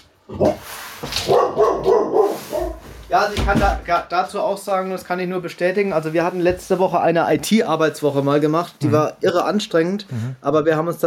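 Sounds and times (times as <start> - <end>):
speech: 0.3 - 0.7, 3.1 - 11.0
dog barking: 1.2 - 2.9.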